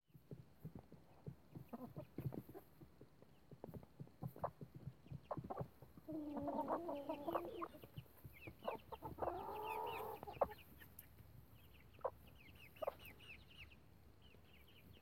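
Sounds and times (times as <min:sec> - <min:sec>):
mother hen clucking: 0:01.5 - 0:02.8, 0:03.6 - 0:13.8.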